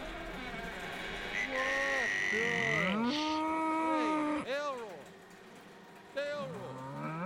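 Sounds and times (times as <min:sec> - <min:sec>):
bull bellowing in long drawn-out moos: 0:00.2 - 0:04.5, 0:06.4 - 0:07.2
speech: 0:02.3 - 0:02.7.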